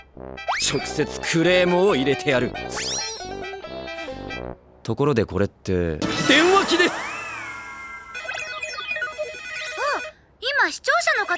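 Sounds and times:
speech: 0.2 - 3.1, 4.9 - 6.6
telephone ringing with warbling electronic tones: 6.5 - 10.1, 11.1 - 11.3.

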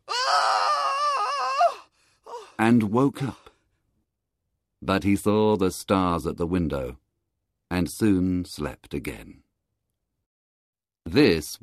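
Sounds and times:
man screaming: 0.0 - 2.5
speech: 2.6 - 3.4, 4.8 - 7.0, 7.7 - 9.4, 11.0 - 11.6.

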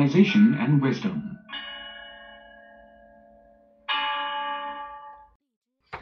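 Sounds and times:
speech: 0.0 - 1.4
Chinese bianzhong bronze chime bells ringing: 0.0 - 5.4.

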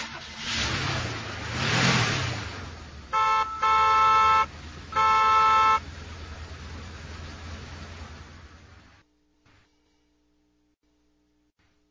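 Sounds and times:
traffic rumble: 0.0 - 9.0
car horn honking: 3.0 - 6.0.

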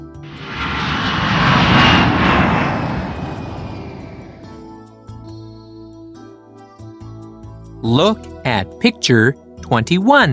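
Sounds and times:
airplane passing overhead with loud broad engine roar: 0.0 - 4.9
speech: 7.9 - 10.3.

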